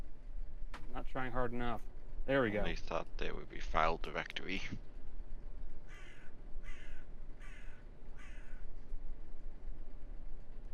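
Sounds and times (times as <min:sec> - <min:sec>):
rumble: 0:00.0 - 0:10.7
speech: 0:01.0 - 0:04.9
crows cawing: 0:05.8 - 0:08.7.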